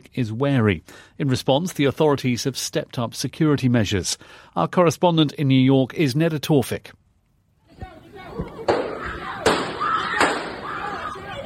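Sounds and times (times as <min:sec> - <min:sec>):
speech: 0:00.1 - 0:07.0
panicked voices and shouting in a crowded subway car: 0:08.1 - 0:11.4
gunshots fired inside a crowded subway car: 0:08.7 - 0:10.9.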